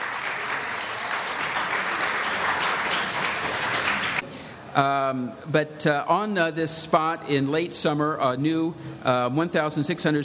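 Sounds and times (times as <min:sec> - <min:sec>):
crowd applauding: 0:00.0 - 0:04.2
speech: 0:04.8 - 0:10.2.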